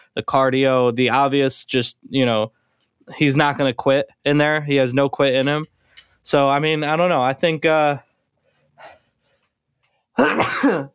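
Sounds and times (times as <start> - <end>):
speech: 0.2 - 8.1, 10.2 - 10.9
person sneezing: 10.2 - 10.9.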